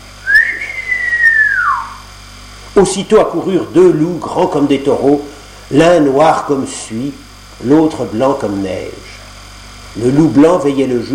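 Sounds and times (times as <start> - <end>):
man whistling a single long clear call: 0.2 - 2.1
speech: 2.8 - 9.1, 10.0 - 11.1.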